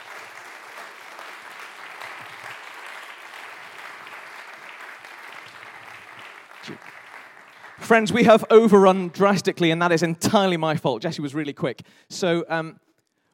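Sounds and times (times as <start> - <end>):
audience applause: 0.0 - 8.4
speech: 6.6 - 7.0, 7.8 - 12.8.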